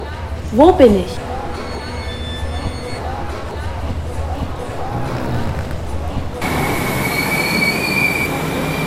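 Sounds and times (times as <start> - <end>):
crowd noise in a railway station: 0.0 - 8.3
train rumbling past in a busy main railway station: 0.0 - 8.8
voices: 0.0 - 8.8
speech: 0.5 - 1.3
train wheels squealing: 1.2 - 3.7, 6.5 - 8.8.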